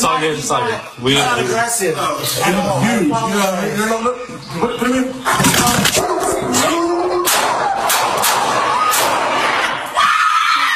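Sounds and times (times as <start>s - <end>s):
speech: 0.2s - 7.0s
people shouting and screaming frantically: 5.7s - 10.7s
gunshots from a police officer shooting a dog at an apartment complex: 7.2s - 9.5s.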